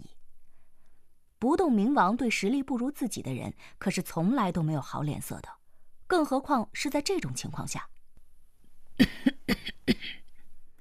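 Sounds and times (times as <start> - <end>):
speech: 1.4 - 8.0, 9.0 - 9.7
old woman coughing: 9.0 - 10.2.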